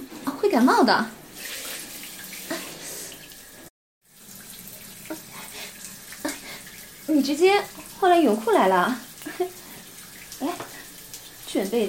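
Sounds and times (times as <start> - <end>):
tap water running from a faucet whose valve won't close: 0.1 - 11.8
speech: 0.5 - 1.2, 7.2 - 9.1, 11.5 - 11.8.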